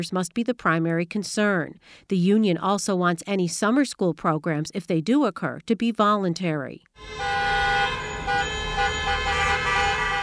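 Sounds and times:
speech: 0:00.0 - 0:07.5
car horns honking outside from protesters: 0:07.0 - 0:10.2
traffic rumble: 0:07.0 - 0:10.2.

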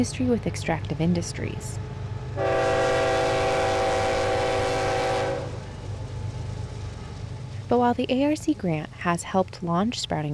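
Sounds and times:
speech: 0:00.0 - 0:02.6, 0:07.7 - 0:10.3
coal train rail cars rumbling past alongside a farm: 0:00.0 - 0:09.9
coal train horn blast: 0:02.4 - 0:05.8.

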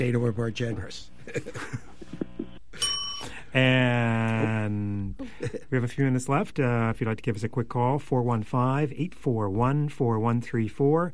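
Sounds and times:
speech: 0:00.0 - 0:01.8, 0:03.6 - 0:11.1
single clear bell ringing: 0:02.8 - 0:03.6.

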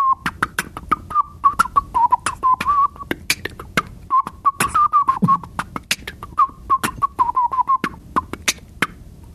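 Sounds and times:
wavering whistled melody: 0:00.0 - 0:03.2, 0:04.1 - 0:08.6
beatboxed clicks snares and low thumps: 0:00.0 - 0:09.3.

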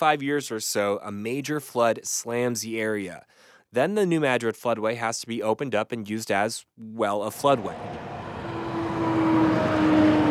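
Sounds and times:
speech: 0:00.0 - 0:08.3
big rig trucks driving through a tunnel under a rusty metal gate: 0:07.3 - 0:10.2.

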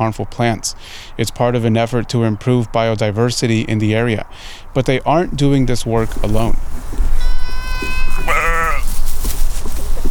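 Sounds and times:
speech: 0:00.0 - 0:07.2, 0:07.8 - 0:08.4
goats and sheep grazing on invasive plants and dry grass bleating: 0:07.1 - 0:09.0.

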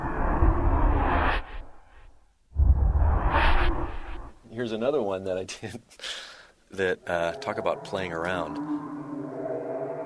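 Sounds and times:
loud broadband whoosh transition sound effect with rising sweep: 0:00.0 - 0:04.4
speech: 0:04.6 - 0:08.9.

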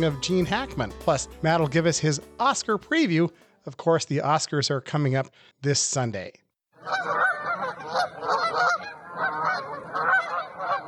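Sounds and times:
speech: 0:00.0 - 0:07.3
flock of geese honking overhead: 0:06.8 - 0:10.8.

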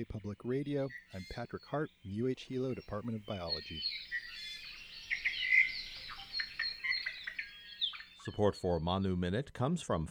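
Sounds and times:
speech: 0:00.0 - 0:04.4, 0:08.2 - 0:10.0
Hawaiian hawk calling: 0:00.0 - 0:08.3
bright chirps and twitters: 0:02.7 - 0:08.3.

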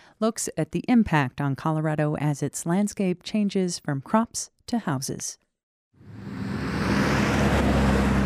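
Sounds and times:
speech: 0:00.2 - 0:05.4
highway traffic roar: 0:06.0 - 0:08.2
low engine hum: 0:06.0 - 0:08.2.

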